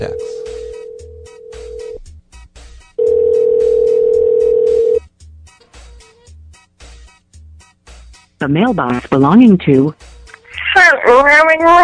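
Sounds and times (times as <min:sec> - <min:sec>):
ringback tone of an outgoing call to a cell phone: 0:00.0 - 0:02.0, 0:03.0 - 0:05.0
speech: 0:08.4 - 0:10.0, 0:11.0 - 0:11.8.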